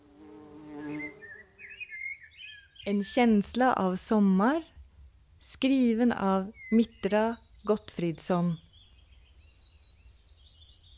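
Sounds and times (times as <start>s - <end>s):
bumblebee buzzing: 0.0s - 1.7s
speech: 2.8s - 4.7s, 5.6s - 8.6s.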